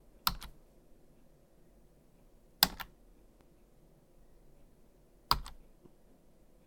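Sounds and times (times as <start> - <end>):
typing: 0.2 - 0.5, 5.3 - 5.6.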